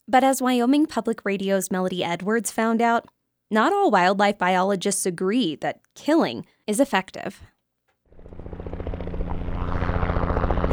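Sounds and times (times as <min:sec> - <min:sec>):
speech: 0:00.1 - 0:07.5
deep helicopter engine drone: 0:08.1 - 0:10.7
helicopter rotor thumping: 0:08.1 - 0:10.7.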